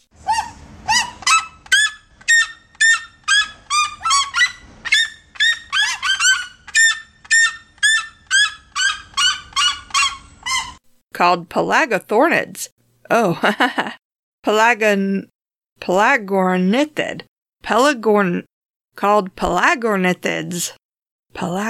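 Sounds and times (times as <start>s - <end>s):
red-legged seriema calling: 0.2s - 10.8s
speech: 11.2s - 20.8s, 21.4s - 21.6s
laughter: 13.2s - 14.0s.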